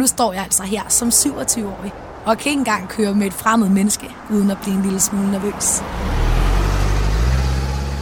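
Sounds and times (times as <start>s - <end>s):
speech: 0.0s - 6.3s
car engine rumbling while pulling into a parking lot: 0.0s - 8.0s.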